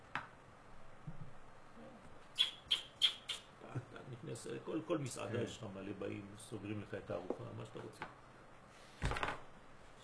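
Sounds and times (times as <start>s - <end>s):
sparrow chirping: 2.4s - 3.5s
speech: 4.2s - 8.2s.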